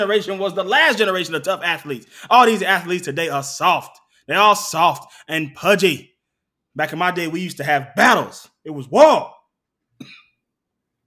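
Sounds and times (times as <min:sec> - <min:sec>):
speech: 0:00.0 - 0:06.1, 0:06.8 - 0:09.4, 0:10.0 - 0:10.2
single short sharp cough: 0:10.0 - 0:10.4.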